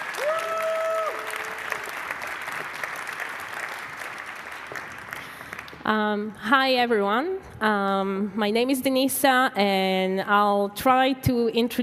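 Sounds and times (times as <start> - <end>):
audience applause: 0.0 - 5.8
speech: 5.9 - 11.8.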